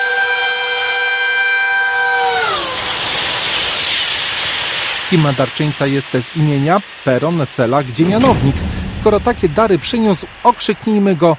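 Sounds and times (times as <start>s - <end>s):
passing train horn chord: 0.0s - 2.5s
train cars rolling along the rails: 3.1s - 11.3s
speech: 5.1s - 11.3s.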